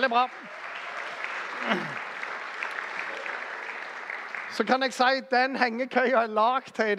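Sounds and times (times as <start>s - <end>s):
speech: 0.0s - 0.6s, 1.6s - 2.0s, 4.6s - 6.9s
audience applause of many hands clapping: 0.0s - 5.3s.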